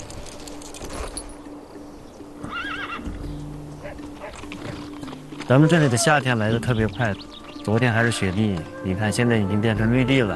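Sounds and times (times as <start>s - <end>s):
saddled horse whinnying on grassland at dawn: 2.4s - 4.9s
speech: 5.5s - 10.3s.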